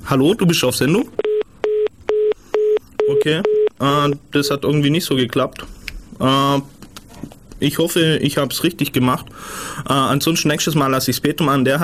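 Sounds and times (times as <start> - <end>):
speech: 0.1 - 1.2, 3.2 - 6.8, 7.6 - 11.8
telephone line tone beeps after picking up a call: 1.2 - 3.7.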